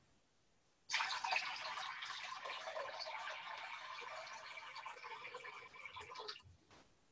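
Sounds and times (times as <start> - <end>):
water pouring from a big jar at a water communion service: 0.9 - 6.5.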